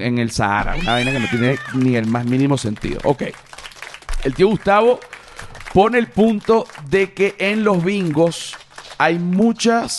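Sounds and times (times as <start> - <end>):
speech: 0.0 - 3.6, 4.2 - 5.1, 5.7 - 9.9
female Staffordshire terrier screaming instead of barking: 0.6 - 2.0.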